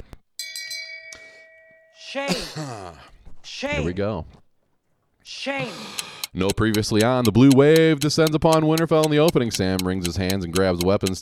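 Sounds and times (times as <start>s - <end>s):
bright metallic bell ringing: 0.4s - 3.0s
speech: 2.1s - 4.4s, 5.2s - 11.2s.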